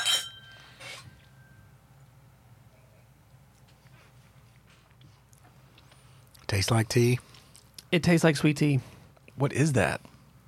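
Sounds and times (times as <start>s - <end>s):
glasses of blended tea whiskey clinking in a toast: 0.0s - 1.6s
speech: 6.5s - 7.3s, 7.9s - 10.1s.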